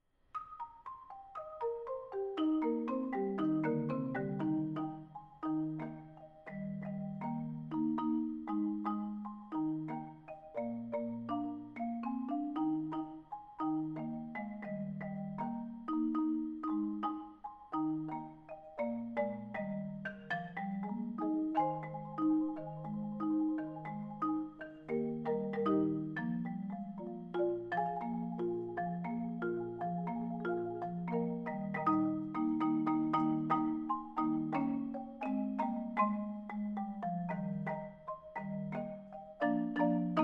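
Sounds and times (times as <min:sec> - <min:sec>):
merry mallet percussion music: 0:00.3 - 0:40.2.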